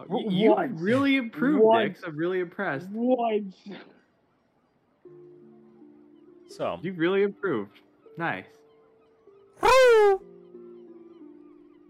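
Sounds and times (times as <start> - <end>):
speech: 0.0 - 4.0, 6.5 - 8.6, 9.6 - 10.3
person imitating a pigeon call: 9.6 - 10.2.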